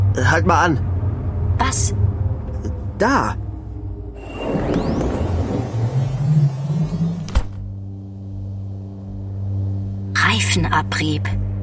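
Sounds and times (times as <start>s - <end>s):
car engine rumbling with rising whine: 0.0s - 9.3s
speech: 0.2s - 0.9s, 1.6s - 2.1s, 3.0s - 3.4s, 10.3s - 11.5s
car stopping thud: 4.4s - 7.7s.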